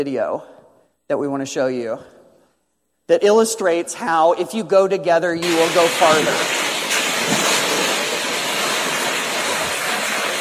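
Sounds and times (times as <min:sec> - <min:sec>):
speech: 0:00.0 - 0:02.2, 0:03.1 - 0:06.6
rushing water roar: 0:05.4 - 0:10.3.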